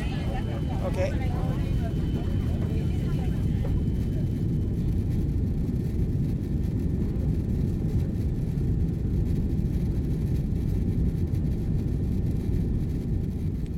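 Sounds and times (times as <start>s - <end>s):
faint murmuring voices: 0.0s - 5.2s
airplane cabin roar in flight: 0.0s - 13.7s
speech: 0.9s - 1.5s.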